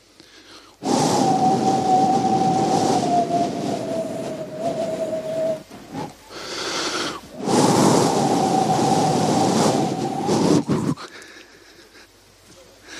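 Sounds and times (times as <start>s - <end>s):
wind whistling through an ajar window: 0.7s - 11.1s.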